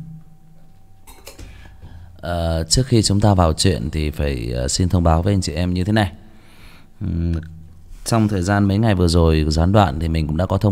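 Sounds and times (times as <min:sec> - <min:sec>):
glassware clinking: 0:01.0 - 0:01.6
speech: 0:02.2 - 0:06.2, 0:07.0 - 0:10.7.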